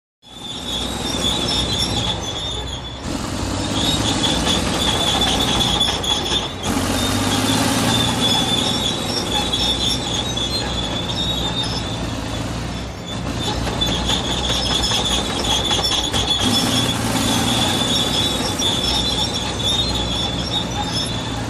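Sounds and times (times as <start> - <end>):
large digger earthmover at work: 0.2 - 21.4
second vehicle in background: 0.2 - 21.4.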